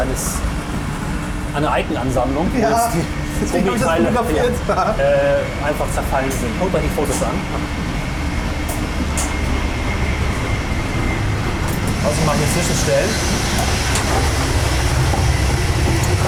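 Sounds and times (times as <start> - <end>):
moving train with InterRegio carriages heard from the gangway between carriages: 0.0 - 16.2
speech: 0.1 - 0.4, 1.5 - 7.8, 12.0 - 14.5
train carriages rattling and clanking: 8.4 - 16.2.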